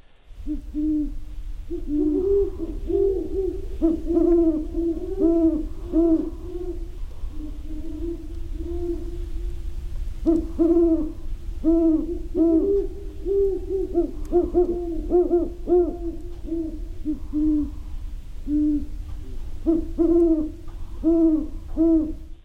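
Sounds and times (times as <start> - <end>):
wild great horned owls hooting: 0.4 - 22.4.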